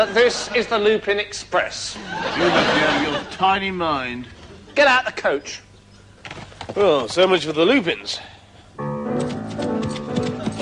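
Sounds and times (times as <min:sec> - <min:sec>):
laughter: 0:00.0 - 0:00.8, 0:01.9 - 0:03.6, 0:10.2 - 0:10.6
speech: 0:00.0 - 0:05.7, 0:06.3 - 0:08.9
horse hooves galloping: 0:06.2 - 0:07.3, 0:09.2 - 0:10.6.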